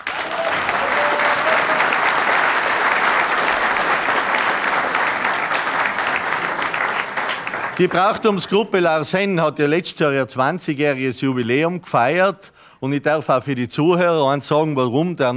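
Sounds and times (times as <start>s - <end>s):
audience applause welcoming a host: 0.0s - 8.6s
speech: 7.8s - 15.3s.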